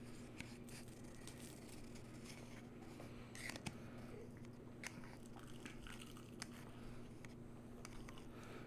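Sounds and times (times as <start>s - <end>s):
biting and chewing a crispy waffle: 0.2s - 8.5s.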